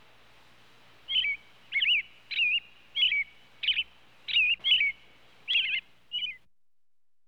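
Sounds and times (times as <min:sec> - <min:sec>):
robin chirping calls: 0:01.1 - 0:06.4.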